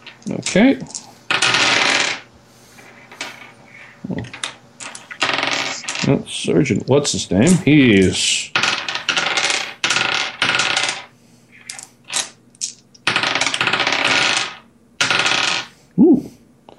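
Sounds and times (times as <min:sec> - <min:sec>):
several dice clattering across a hard surface: 0:00.0 - 0:02.3, 0:02.9 - 0:06.1, 0:07.5 - 0:15.7
speech: 0:00.2 - 0:01.0, 0:06.1 - 0:08.5
low voice: 0:16.0 - 0:16.3.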